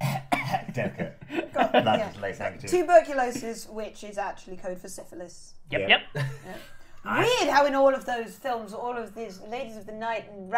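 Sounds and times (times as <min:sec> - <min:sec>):
person coughing into a handkerchief: 0:00.0 - 0:00.8
speech: 0:00.8 - 0:10.5.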